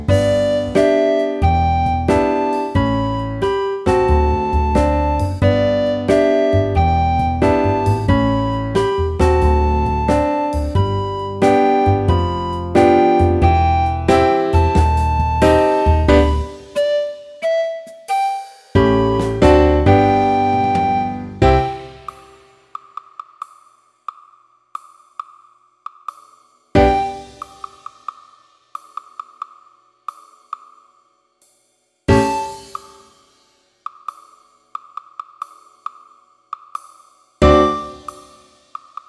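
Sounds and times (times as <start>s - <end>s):
practice piece played on a recorder: 0.1s - 22.4s, 26.8s - 27.8s, 32.1s - 33.0s, 37.4s - 38.5s.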